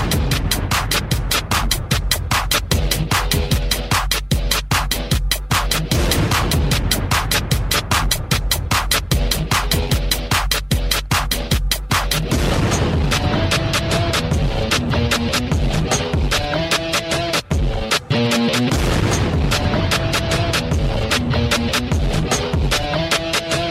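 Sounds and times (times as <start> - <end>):
booming explosion-like blasts: 0.0 - 2.1, 5.9 - 9.3, 12.3 - 15.8, 18.7 - 21.5
loud dense intro music: 0.0 - 23.6.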